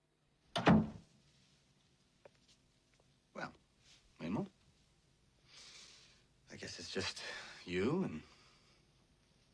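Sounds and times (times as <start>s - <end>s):
door latch click: 0.6s - 0.9s
speech: 7.0s - 8.3s.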